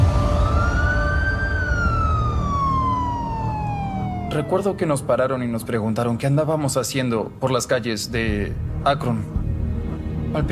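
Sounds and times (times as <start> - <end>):
police patrol car siren wailing in Akron: 0.0 - 5.4
speech: 4.4 - 9.4.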